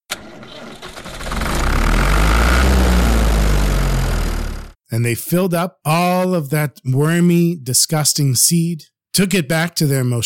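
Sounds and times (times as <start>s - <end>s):
heavy tractor engine clattering and rumbling: 0.7s - 4.8s
speech: 4.9s - 10.2s.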